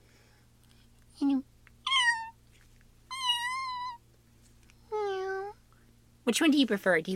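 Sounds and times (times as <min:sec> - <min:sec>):
faint hum: 0:00.0 - 0:07.1
person imitating cat meows: 0:01.9 - 0:02.4, 0:03.1 - 0:04.0, 0:04.9 - 0:05.6
speech: 0:06.3 - 0:07.1.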